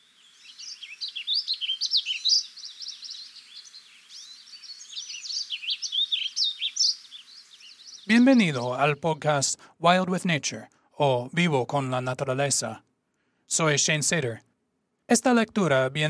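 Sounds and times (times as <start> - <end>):
Warbling Vireo singing a fast burbling warble in Montana, USA: 0.4 - 9.4
speech: 8.1 - 12.9, 13.5 - 14.5, 15.1 - 16.0.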